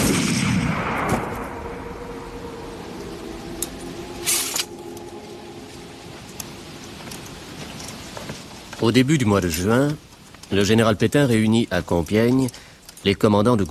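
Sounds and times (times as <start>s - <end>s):
artillery guns firing on command: 0.0s - 1.4s
speech: 8.8s - 13.6s.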